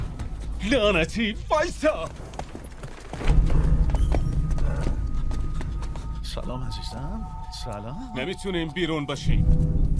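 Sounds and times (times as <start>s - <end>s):
cows' hooves clopping on a hard street: 0.0s - 6.8s
speech: 0.6s - 2.3s, 6.4s - 9.9s.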